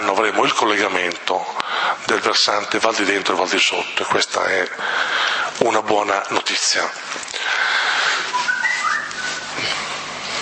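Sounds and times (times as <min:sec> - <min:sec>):
speech: 0:00.2 - 0:07.6
whistle sounding short wavering notes: 0:08.3 - 0:10.2.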